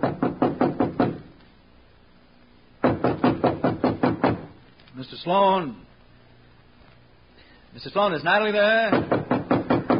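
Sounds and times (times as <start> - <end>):
firm knocking on the wooden door of a room in a house: 0.0 - 1.2, 2.8 - 4.5, 8.9 - 9.9
speech: 5.0 - 5.9, 7.8 - 9.2.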